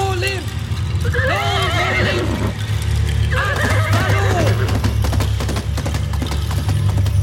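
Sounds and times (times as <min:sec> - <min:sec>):
galloping hooves: 0:00.0 - 0:07.2
horse whinnying: 0:01.2 - 0:02.6, 0:03.3 - 0:05.0.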